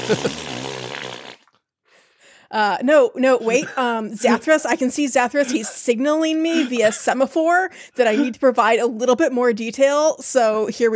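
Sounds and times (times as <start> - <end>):
laughter: 0.0 - 0.4, 3.4 - 7.4, 8.0 - 8.4
loud buzzy fart sound effect: 0.0 - 1.5
speech: 0.1 - 0.5, 2.5 - 10.9.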